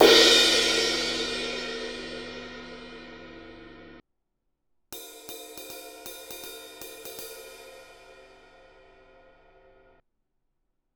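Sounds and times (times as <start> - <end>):
Sabian 20 inch HHX Manhattan Jazz crash ride cymbal: 0.0 - 4.0.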